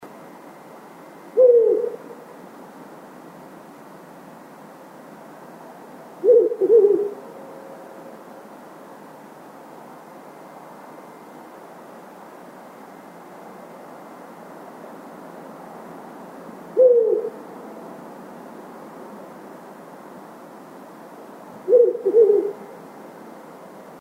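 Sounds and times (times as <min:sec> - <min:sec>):
owl: 0:01.4 - 0:02.2, 0:06.2 - 0:07.2, 0:16.8 - 0:17.4, 0:21.7 - 0:22.8.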